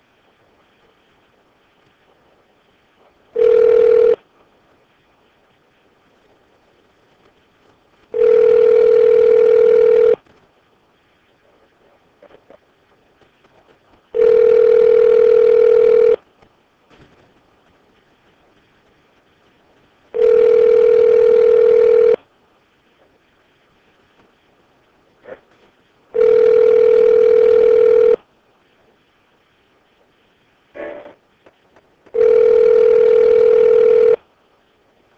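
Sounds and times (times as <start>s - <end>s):
ringback tones of an outgoing telephone call: 3.4s - 4.2s, 8.1s - 10.2s, 14.2s - 16.2s, 20.2s - 22.2s, 26.2s - 28.2s, 32.1s - 34.2s.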